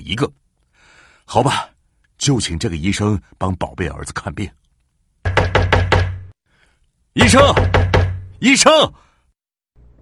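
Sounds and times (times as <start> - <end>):
speech: 0.1 - 0.4, 1.3 - 4.6, 7.2 - 9.0
urgent knocking on a door: 5.2 - 6.3, 7.2 - 8.4.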